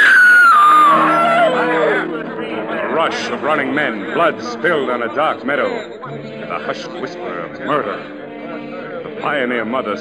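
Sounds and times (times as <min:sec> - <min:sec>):
woman screaming at an evening fair: 0:00.0 - 0:02.1
speech: 0:03.1 - 0:08.2, 0:09.2 - 0:09.9.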